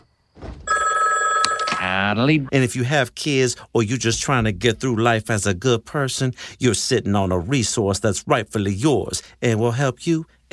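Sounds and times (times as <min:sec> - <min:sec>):
old-style telephone bell ringing: 0:00.7 - 0:02.0
speech: 0:02.0 - 0:10.5.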